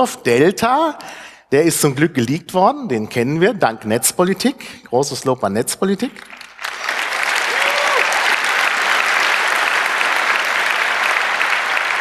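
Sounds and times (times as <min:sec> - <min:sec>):
speech: 0:00.0 - 0:06.4
audience applause: 0:06.2 - 0:11.9.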